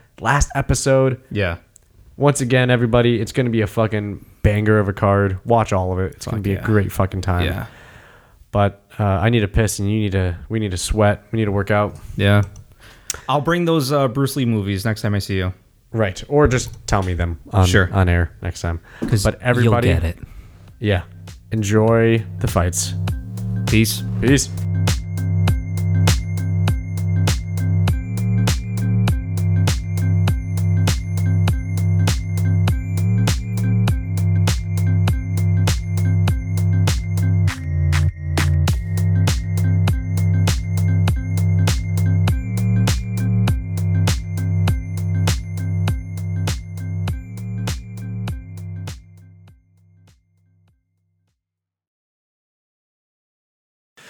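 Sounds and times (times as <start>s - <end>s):
speech: 0.2s - 7.8s, 8.5s - 24.6s
phone ringtone with short repetitive electronic melody: 22.2s - 49.2s.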